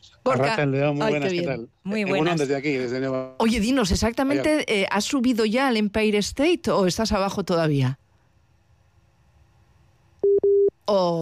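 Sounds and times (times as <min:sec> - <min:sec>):
speech: 0:00.0 - 0:08.0, 0:10.9 - 0:11.1
busy tone beeps on a phone line after a dropped call: 0:10.2 - 0:10.7.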